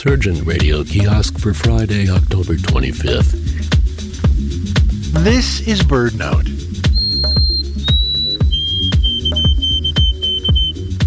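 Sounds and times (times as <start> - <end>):
speech: 0.0 - 3.8, 5.1 - 6.7
rhythmic low clicking: 0.0 - 11.0
White-throated Sparrow singing a pure whistled song: 6.7 - 11.0.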